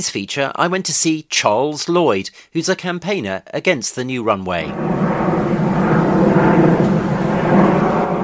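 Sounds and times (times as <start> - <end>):
speech: 0.0 - 5.5
aeroplane engine roar passing overhead among hedges and green fields: 4.5 - 8.2.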